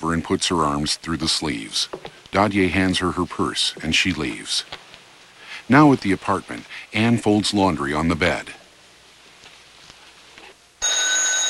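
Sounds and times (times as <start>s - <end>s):
speech: 0.0s - 4.8s, 5.7s - 8.6s
telephone ringing with bright sustained electronic ring: 10.8s - 11.4s.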